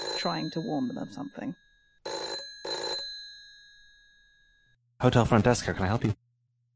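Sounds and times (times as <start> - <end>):
big rotary telephone bell ringing: 0.0 - 4.8
speech: 0.2 - 1.7, 5.0 - 6.2.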